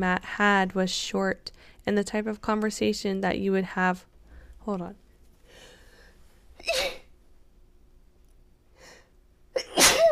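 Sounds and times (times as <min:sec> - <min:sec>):
speech: 0:00.0 - 0:05.0
person sneezing: 0:06.6 - 0:07.1, 0:09.6 - 0:10.1.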